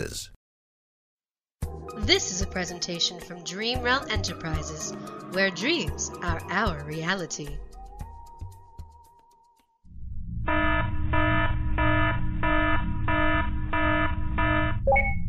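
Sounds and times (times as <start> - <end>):
speech: 0.0 - 0.4, 1.9 - 7.6
spaceship red alert alarm blaring in pulsing bursts: 10.3 - 15.2.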